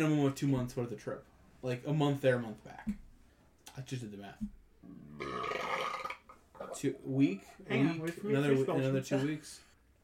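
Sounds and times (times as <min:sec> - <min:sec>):
speech: 0:00.0 - 0:03.0, 0:03.8 - 0:06.0, 0:06.6 - 0:10.0
long loud belch: 0:04.8 - 0:06.8.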